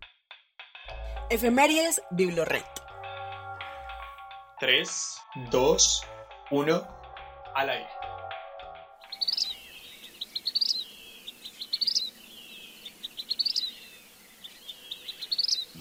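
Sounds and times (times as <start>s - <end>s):
speech: 1.3s - 2.8s, 4.6s - 7.0s, 7.6s - 8.0s
vermilion flycatcher Pyrocephalus rubinus singing: 9.0s - 15.8s.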